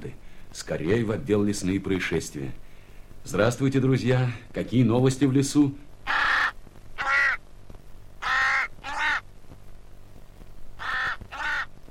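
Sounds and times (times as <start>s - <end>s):
faint low hum: 0.0s - 11.8s
speech: 0.5s - 2.6s, 3.2s - 5.9s
raven croaking: 6.0s - 7.5s, 8.2s - 9.4s, 10.8s - 11.8s.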